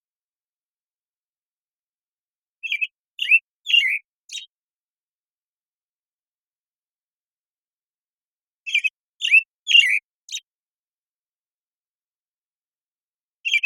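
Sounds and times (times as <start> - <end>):
American Robin Turdus migratorius morning song in Washington: 2.5 - 4.6, 8.6 - 10.6, 13.4 - 13.6.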